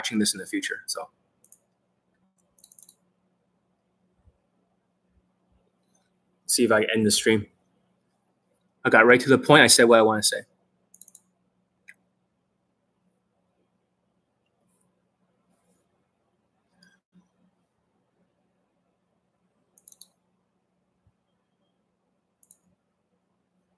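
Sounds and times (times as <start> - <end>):
speech: 0.0 - 1.2, 6.5 - 7.5, 8.8 - 10.5
low steady hum: 0.0 - 23.7
faint computer mouse clicks while ending a live stream: 1.4 - 3.0, 10.9 - 12.0, 19.7 - 20.2, 22.4 - 22.8.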